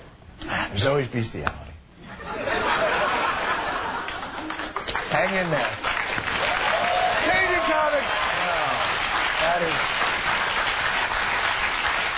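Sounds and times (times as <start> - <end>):
speech: 0.6 - 1.6, 5.1 - 6.0
laughter: 2.0 - 4.8
large audience applause: 4.0 - 12.1
audience whoops and cheers: 6.4 - 8.8.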